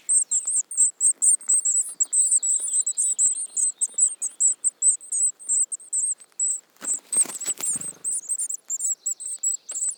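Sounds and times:
Eurasian blue tit Cyanistes caeruleus high chips and trills: 0.0s - 9.9s.

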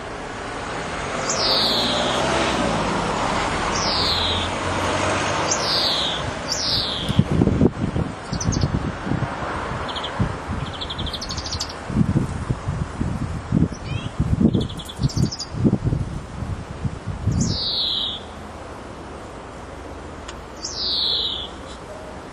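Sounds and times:
passing vehicles: 0.0s - 22.3s
road traffic rumbling: 0.0s - 22.3s
European greenfinch Chloris chloris calls: 1.2s - 2.4s, 3.7s - 4.6s, 5.4s - 7.3s, 8.2s - 8.7s, 9.8s - 11.8s, 13.8s - 15.6s, 17.3s - 18.4s, 20.6s - 21.8s.

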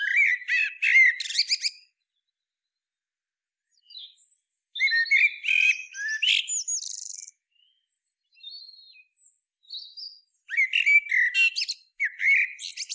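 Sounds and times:
common blackbird Turdus merula singing: 0.0s - 2.0s, 3.7s - 12.9s.

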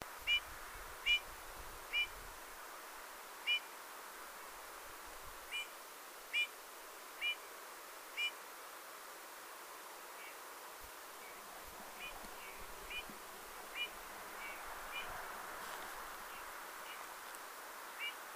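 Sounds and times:
background hiss: 0.0s - 18.3s
Eurasian bullfinch Pyrrhula pyrrhula giving soft short piping notes: 0.3s - 1.2s, 1.9s - 2.2s, 6.3s - 6.5s, 7.2s - 7.4s, 12.0s - 15.2s.

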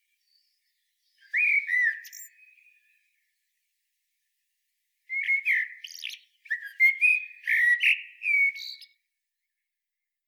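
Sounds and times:
Eurasian blackbird Turdus merula singing rich fluty warbled phrases: 0.1s - 3.1s, 5.1s - 9.0s.

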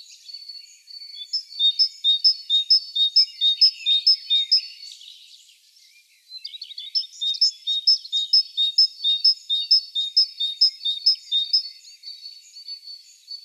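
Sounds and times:
great tit Parus major singing two-note teacher phrases: 1.1s - 5.2s, 6.4s - 11.8s.

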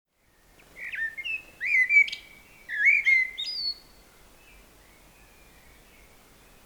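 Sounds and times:
Common blackbird Turdus merula singing: 0.8s - 3.9s.

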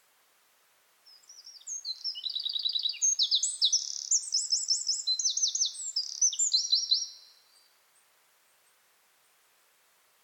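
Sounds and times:
Eurasian wren Troglodytes troglodytes singing piercing notes and dry trills: 1.1s - 7.2s.

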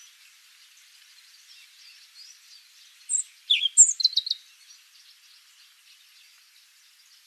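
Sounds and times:
European robin Erithacus rubecula calling: 1.5s - 5.4s.

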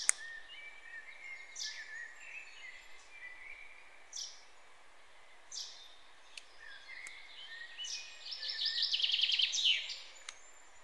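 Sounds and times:
sharp click: 0.0s - 0.3s
common chaffinch song: 0.0s - 10.8s.

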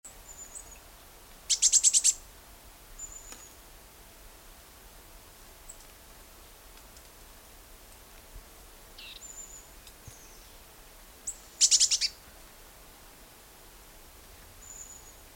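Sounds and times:
quiet background hiss: 0.0s - 15.3s
Eurasian blue tit Cyanistes caeruleus chirping: 1.5s - 2.2s, 9.0s - 9.6s, 11.3s - 12.2s.

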